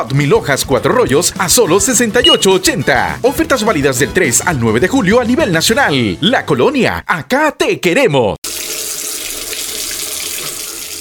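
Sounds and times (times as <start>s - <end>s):
speech: 0.0s - 8.6s
water running from an open tap: 8.4s - 11.0s.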